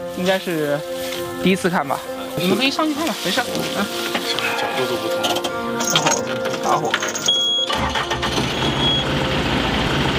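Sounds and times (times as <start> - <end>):
speech: 0.2 - 4.1, 4.8 - 7.4
combine harvester engine starting and running: 6.4 - 10.1.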